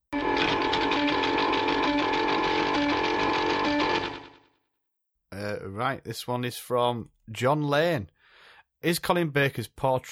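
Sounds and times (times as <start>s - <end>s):
prize wheel spinning with mechanical clatter: 0.2s - 4.5s
speech: 5.7s - 8.2s, 8.8s - 10.1s.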